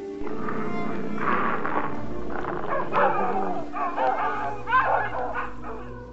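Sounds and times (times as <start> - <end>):
low steady hum: 0.2 - 6.1
several dogs barking and yipping: 2.5 - 6.1.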